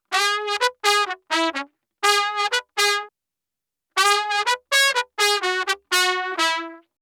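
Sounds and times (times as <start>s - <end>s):
cheery trumpet loop in E major: 0.0s - 3.1s, 4.0s - 6.9s.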